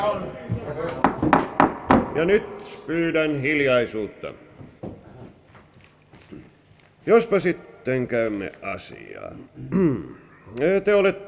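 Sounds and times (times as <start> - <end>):
speech: 0.1 - 1.0, 2.2 - 4.4, 7.1 - 11.2
door shut by a bailiff in a court entrance hall: 1.0 - 2.3.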